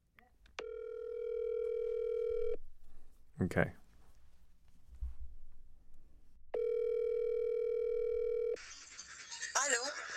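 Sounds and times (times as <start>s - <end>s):
ringback tone from an outgoing phone call: 0.6s - 2.6s, 6.6s - 8.6s
speech: 3.4s - 3.8s.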